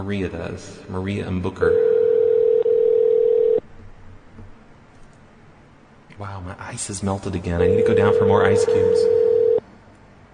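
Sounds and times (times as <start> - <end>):
speech: 0.0 - 1.9, 6.2 - 9.3
faint low hum: 0.0 - 10.3
telephone dial tone while calling a number: 1.7 - 3.6, 8.7 - 9.6.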